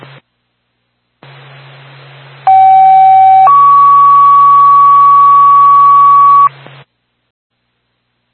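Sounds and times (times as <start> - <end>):
radio hiss: 0.0 - 0.3, 1.2 - 2.4
fire dispatch pager alert tones: 2.5 - 6.5.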